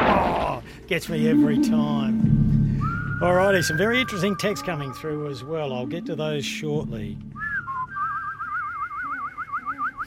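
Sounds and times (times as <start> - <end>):
speech: 0.9 - 2.6, 3.2 - 7.4
person whistling a wavering tone with vibrato: 1.3 - 5.2, 7.3 - 10.0.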